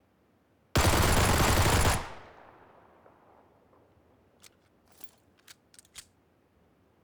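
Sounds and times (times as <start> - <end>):
P18c gun firing full auto: 0.8 - 3.8.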